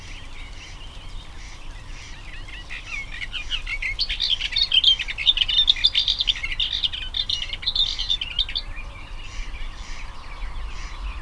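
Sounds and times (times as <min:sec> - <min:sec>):
male Booted Warbler babbling song: 0:00.0 - 0:11.2
steady low background hiss: 0:00.0 - 0:11.2.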